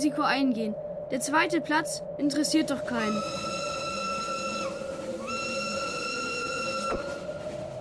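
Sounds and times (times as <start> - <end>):
speech: 0.0 - 3.5
low rumbling background: 0.0 - 7.8
multi-toned train whistle in the distance: 2.9 - 7.7.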